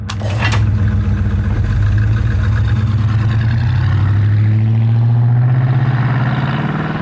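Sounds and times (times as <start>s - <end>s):
muscle car engine rumbling with throaty exhaust: 0.0s - 7.0s.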